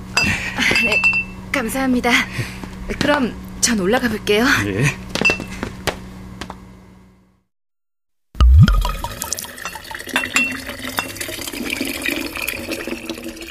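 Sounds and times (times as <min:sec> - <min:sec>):
glassy clinks: 0:00.2 - 0:01.4, 0:08.9 - 0:11.2
speech: 0:00.8 - 0:05.0
thick liquid enzyme pouring and splashing between containers: 0:08.4 - 0:13.4.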